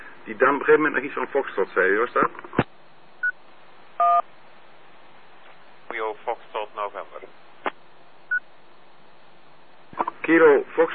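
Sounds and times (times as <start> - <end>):
constant band-limited radio hiss: 0.0 - 10.9
speech: 0.3 - 2.6, 10.3 - 10.9
radio call tone beep sent over the channel: 4.0 - 4.2.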